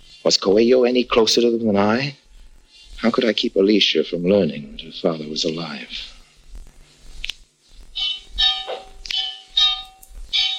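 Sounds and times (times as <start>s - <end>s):
speech: 0.2s - 2.2s, 3.0s - 6.2s
church bell clanging: 8.0s - 10.5s.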